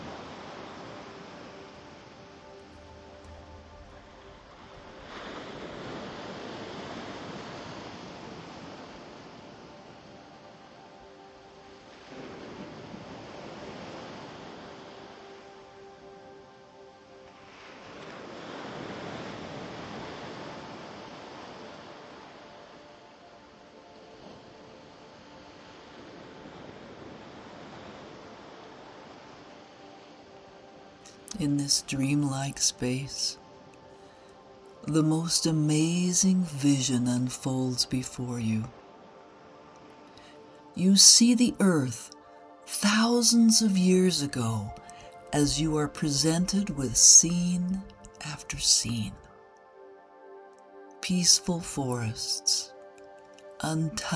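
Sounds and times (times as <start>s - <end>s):
ocean waves breaking on a beach: 0.0s - 54.1s
soft sustained drone: 0.0s - 54.1s
speech: 31.4s - 33.4s, 34.9s - 38.8s, 40.8s - 42.2s, 42.8s - 49.2s, 51.1s - 52.7s, 53.6s - 54.1s.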